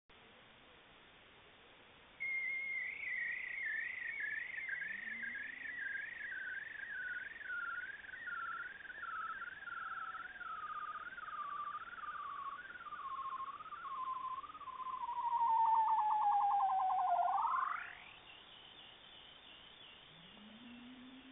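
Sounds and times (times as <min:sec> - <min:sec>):
Arctic bearded seal calling: 0:02.2 - 0:17.8.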